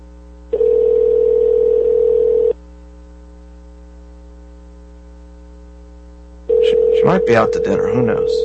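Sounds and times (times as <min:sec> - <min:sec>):
faint low hum: 0:00.0 - 0:08.4
telephone ringback tone on an outgoing call: 0:00.5 - 0:02.6, 0:06.5 - 0:08.4
speech: 0:07.0 - 0:08.4.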